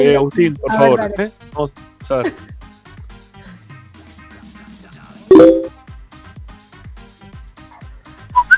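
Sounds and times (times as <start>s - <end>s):
speech: 0.0s - 2.6s
bright blips: 5.3s - 5.7s
email notification chime: 5.3s - 5.7s.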